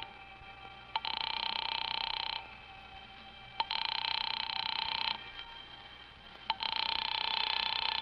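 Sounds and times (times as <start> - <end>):
telephone ringing: 0.9 - 2.6, 3.6 - 5.4, 6.5 - 8.0.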